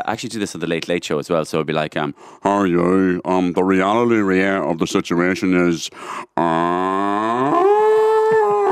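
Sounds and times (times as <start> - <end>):
speech: 0.0 - 7.6
man imitating a cow mooing: 6.4 - 8.7.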